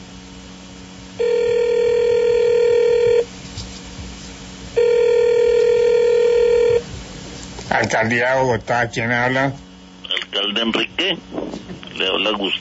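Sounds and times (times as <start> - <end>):
telephone ringback tone from an outgoing call: 1.2 - 3.3, 4.8 - 6.8
speech: 7.8 - 9.6, 10.4 - 12.5.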